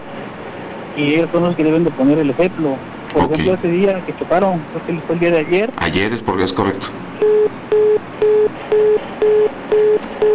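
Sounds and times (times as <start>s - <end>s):
speech: 1.0s - 7.6s
telephone busy tone after a call is cut off: 7.2s - 10.3s.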